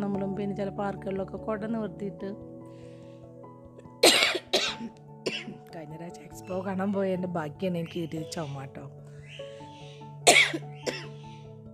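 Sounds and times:
speech: 0.4s - 2.8s, 4.8s - 9.0s
person coughing dry coughs: 4.0s - 5.6s, 10.2s - 11.2s.

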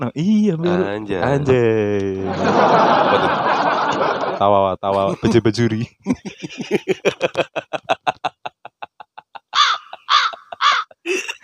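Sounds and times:
speech: 0.0s - 7.6s
laughter: 1.2s - 11.4s
crow cawing sound effect: 9.5s - 11.0s.

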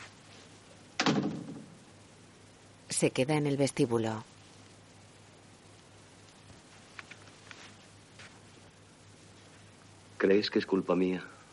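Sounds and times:
door closing thud: 1.0s - 1.7s
speech: 3.0s - 4.3s, 10.2s - 11.4s.

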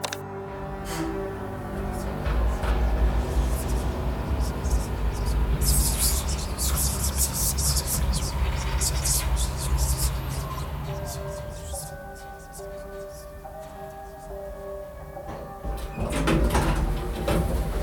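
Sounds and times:
clattering bursts: 0.0s - 17.8s
low mechanical rumble of elevator doors: 0.0s - 17.8s
old dual elevator doors sliding open: 0.0s - 17.8s
steady electrical hum: 0.0s - 17.8s.

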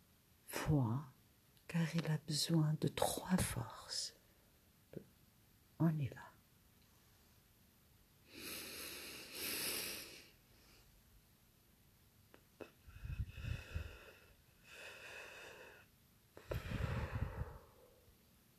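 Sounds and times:
speech: 0.7s - 1.1s, 1.7s - 4.2s, 5.8s - 6.3s
slow breathing out during a guided breathing exercise: 8.2s - 11.0s, 12.6s - 18.2s.

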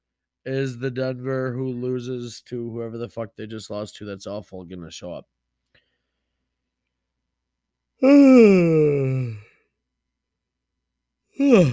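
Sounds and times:
speech: 0.4s - 5.4s, 8.0s - 9.4s, 11.4s - 11.7s
breathy vocal sound: 8.0s - 9.6s, 11.4s - 11.7s
person yawning: 8.0s - 9.6s, 11.4s - 11.7s.

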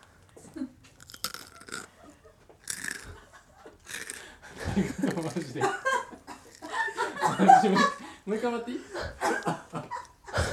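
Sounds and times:
wet mouth sounds: 1.0s - 1.9s, 2.6s - 3.2s, 3.9s - 4.3s
crunchy biting and chewing: 1.0s - 2.0s, 2.6s - 3.2s, 3.8s - 4.4s
laughter: 4.5s - 8.0s, 8.9s - 10.5s
speech: 4.8s - 6.0s, 7.4s - 9.7s.

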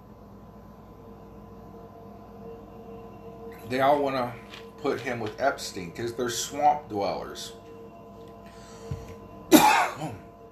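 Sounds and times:
speech: 3.7s - 7.6s
man clearing his throat: 9.5s - 10.3s
man coughing with a loud raspy hack: 9.5s - 10.3s.

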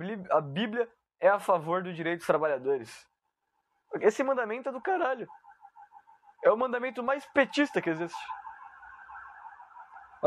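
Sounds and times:
speech: 0.0s - 3.1s, 3.9s - 5.4s, 6.4s - 8.4s
ambulance siren passing outside: 3.5s - 10.2s.

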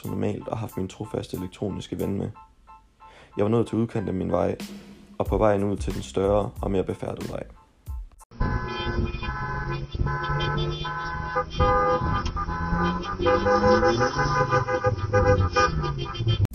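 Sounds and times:
speech: 0.0s - 2.5s, 3.4s - 7.6s, 10.1s - 16.4s
several hundred car horns honking in a car demonstration: 8.3s - 16.5s.

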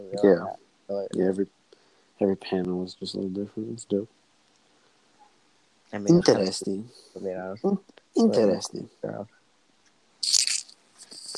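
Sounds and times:
speech: 0.0s - 1.6s, 2.2s - 4.2s, 5.9s - 9.4s
crisp crunch of food being bitten and chewed: 10.2s - 11.3s.

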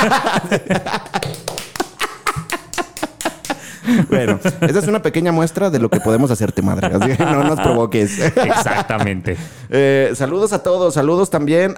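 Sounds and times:
speech: 0.0s - 1.6s, 3.9s - 11.7s
laughter: 0.0s - 5.2s, 5.9s - 9.6s
few people clapping hands: 0.7s - 3.7s.

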